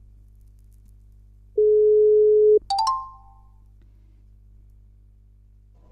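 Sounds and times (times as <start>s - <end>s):
telephone ringing tone while calling someone: 1.6s - 2.9s.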